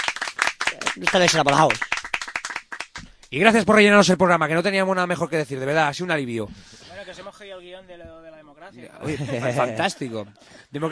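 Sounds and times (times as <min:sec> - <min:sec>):
small group clapping: 0:00.0 - 0:03.6
speech: 0:00.8 - 0:01.9, 0:03.3 - 0:10.9
laughter: 0:08.9 - 0:10.9.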